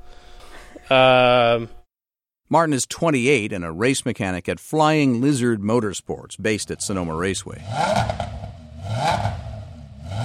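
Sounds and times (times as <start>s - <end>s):
speech: 0.9s - 1.8s, 2.5s - 8.4s
ten-cylinder Audi race car engine revving in a workshop: 6.6s - 10.2s.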